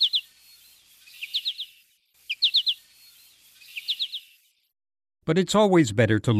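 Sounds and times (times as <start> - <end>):
American goldfinch flight song: 0.0 - 4.7
speech: 5.3 - 6.3.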